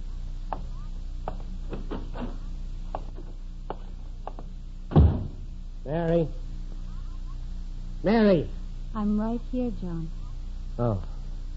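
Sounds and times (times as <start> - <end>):
low steady hum: 0.0 - 11.5
heavy footsteps on a porch: 0.4 - 5.5
speech: 5.9 - 6.4, 8.0 - 10.2, 10.8 - 11.1.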